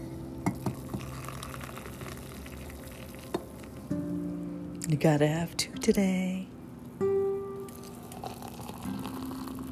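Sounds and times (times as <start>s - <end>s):
coffee maker brewing coffee: 0.4s - 3.9s, 7.6s - 9.7s
speech: 4.9s - 6.5s.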